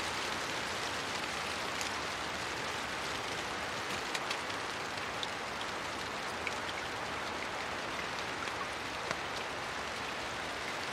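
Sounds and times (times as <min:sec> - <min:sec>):
constant rain under a leafy canopy: 0:00.0 - 0:10.9.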